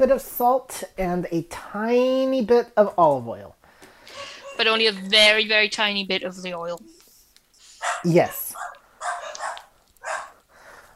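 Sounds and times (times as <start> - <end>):
speech: 0.0 - 3.6, 4.2 - 7.0, 7.9 - 8.7
dogs barking excitedly: 4.1 - 4.6, 7.8 - 10.5.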